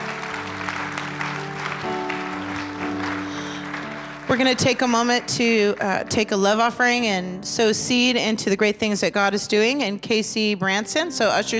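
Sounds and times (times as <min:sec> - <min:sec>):
church audience applauding in praise during a morning service: 0:00.0 - 0:06.3
sustained instrumental keyboard or organ chords: 0:00.0 - 0:09.0
speech: 0:04.3 - 0:11.5.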